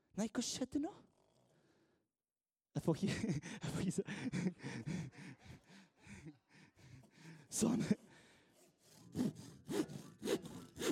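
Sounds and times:
speech: 0:00.2 - 0:01.1, 0:02.8 - 0:05.6, 0:07.5 - 0:08.0
hand saw cutting through wood: 0:06.9 - 0:10.9.

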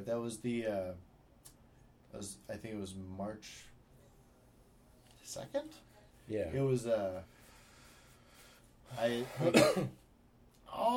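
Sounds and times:
speech: 0:00.0 - 0:01.1, 0:02.1 - 0:03.7, 0:05.3 - 0:07.4, 0:08.9 - 0:10.0, 0:10.7 - 0:10.9
wet phlegmy cough: 0:09.3 - 0:10.0.

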